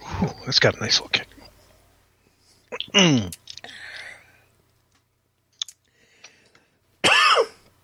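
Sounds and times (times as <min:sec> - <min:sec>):
speech: 0:00.2 - 0:01.3, 0:02.9 - 0:03.8
harsh cough: 0:07.0 - 0:07.6.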